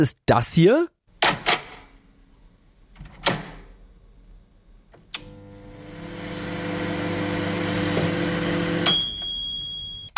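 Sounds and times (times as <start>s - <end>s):
speech: 0.0s - 1.0s
microwave oven humming: 5.0s - 10.1s.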